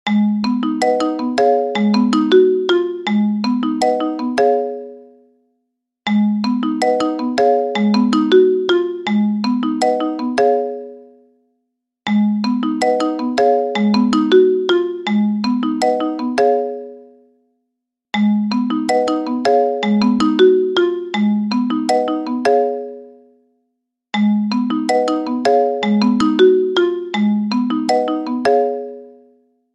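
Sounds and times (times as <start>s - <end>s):
marimba remix ringtone: 0.1s - 5.4s, 6.1s - 11.4s, 12.1s - 17.4s, 18.2s - 23.4s, 24.2s - 29.5s.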